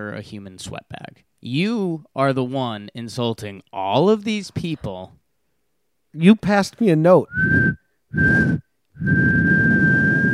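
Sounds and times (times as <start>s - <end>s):
speech: 0.0s - 5.2s, 6.1s - 9.5s
person whistling long steady notes: 7.3s - 10.3s.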